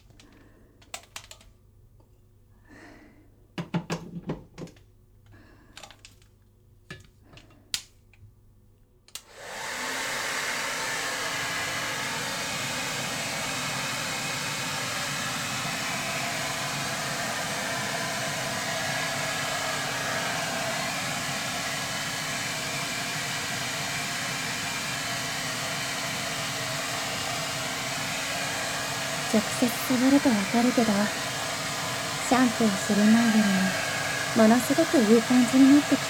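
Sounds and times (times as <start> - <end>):
hair dryer blowing: 9.2 - 36.0
speech: 29.3 - 31.3, 32.3 - 36.0.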